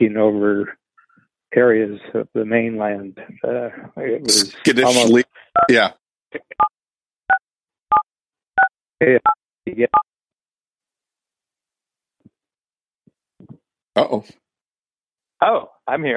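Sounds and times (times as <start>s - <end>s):
speech: 0.0s - 0.8s, 1.5s - 6.7s, 9.0s - 10.1s, 14.0s - 14.4s, 15.4s - 16.1s
brief voice burst: 4.3s - 5.9s
telephone touch-tone dialing beeps: 7.3s - 8.7s.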